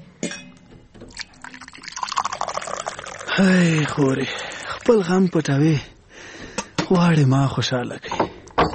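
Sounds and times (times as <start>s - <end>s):
water poured from a jug into a glass: 1.1s - 5.6s
speech: 3.4s - 5.9s, 6.9s - 8.2s.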